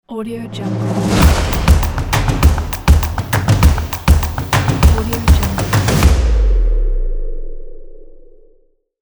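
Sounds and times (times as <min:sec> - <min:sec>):
fast percussion intro logo: 0:00.6 - 0:06.3.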